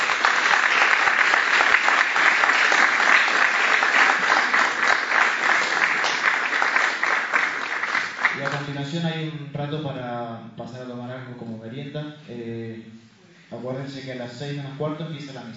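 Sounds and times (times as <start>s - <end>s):
conference audience applause: 0.0s - 8.8s
speech: 9.6s - 15.5s.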